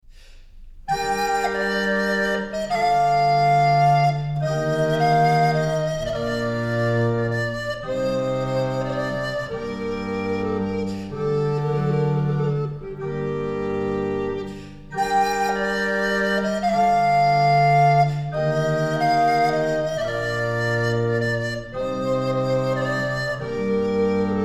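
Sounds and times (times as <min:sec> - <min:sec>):
recorder playing a sarabande in faux bourdon: 0:00.9 - 0:24.4.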